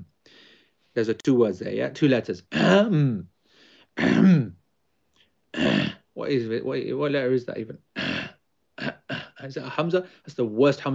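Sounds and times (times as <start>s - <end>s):
speech: 1.0s - 3.3s, 4.0s - 4.6s, 5.5s - 8.1s, 9.4s - 10.9s
person clearing throat in short rasping bursts: 2.5s - 3.2s, 4.0s - 4.6s, 5.6s - 6.0s, 8.0s - 9.4s.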